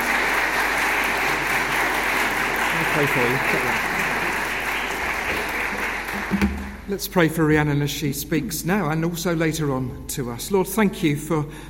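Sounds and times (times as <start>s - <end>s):
church congregation applauding: 0.0s - 6.9s
speech: 3.0s - 3.9s, 6.4s - 11.6s.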